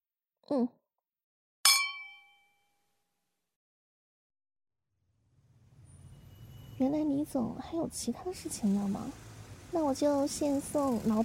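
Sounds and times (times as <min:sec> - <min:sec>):
speech: 0:00.5 - 0:00.8, 0:06.8 - 0:11.2
glasses clinking in a toast: 0:01.7 - 0:02.4.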